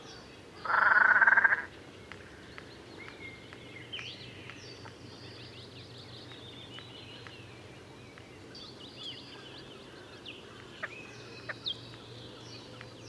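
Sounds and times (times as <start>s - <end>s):
faint high chirps from small birds: 0.0s - 13.0s
great crested grebe giving a loud rasping call: 0.6s - 1.7s.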